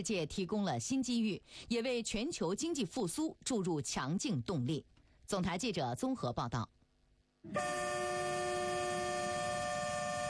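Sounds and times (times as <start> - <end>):
speech: 0.0 - 6.8, 7.4 - 8.0
freight train horn blast: 7.5 - 10.2.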